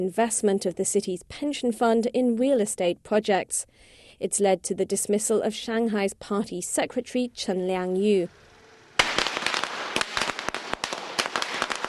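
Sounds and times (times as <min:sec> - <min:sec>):
speech: 0:00.0 - 0:08.5
firecracker bangs at a fireworks display in Shanghai: 0:09.0 - 0:11.8.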